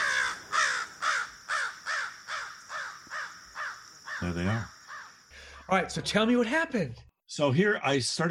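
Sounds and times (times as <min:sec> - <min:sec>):
crow cawing: 0:00.0 - 0:05.8
speech: 0:04.2 - 0:04.8, 0:05.7 - 0:08.3.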